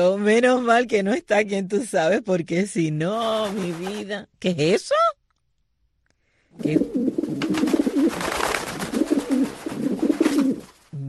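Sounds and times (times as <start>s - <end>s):
speech: 0.0s - 5.2s, 6.6s - 7.2s
pigeon cooing: 6.6s - 11.0s.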